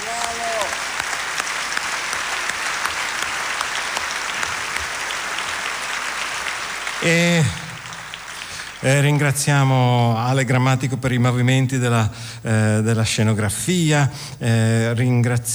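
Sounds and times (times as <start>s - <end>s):
large audience applause: 0.0s - 9.8s
speech: 7.0s - 7.6s, 8.8s - 15.5s.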